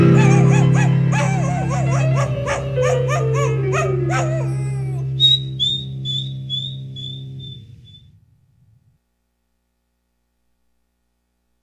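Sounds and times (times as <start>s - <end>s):
dog yelping and howling: 0.1s - 8.0s.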